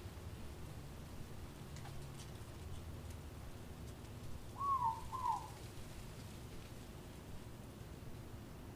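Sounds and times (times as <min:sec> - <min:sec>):
faint background hiss: 0:00.0 - 0:08.7
morepork owl two-note call: 0:04.6 - 0:05.5.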